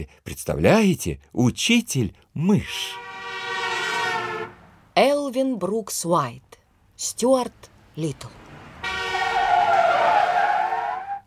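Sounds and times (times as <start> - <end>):
speech: 0.0 - 3.1, 5.0 - 8.4
small car tires screeching while braking hard: 2.7 - 5.0, 7.6 - 11.2.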